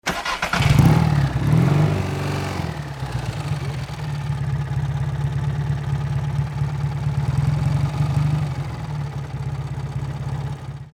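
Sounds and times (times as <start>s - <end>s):
motorcycle starting and idling: 0.0s - 10.9s.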